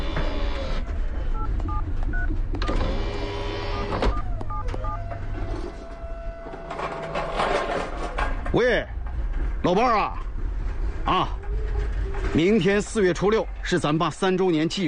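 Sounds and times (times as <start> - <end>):
steady low rumbling noise: 0.0 - 14.8
telephone keypad beeps while dialing a number: 1.4 - 2.8, 3.8 - 5.0
speech: 8.5 - 8.9, 9.7 - 10.2, 11.1 - 11.4, 12.3 - 14.8.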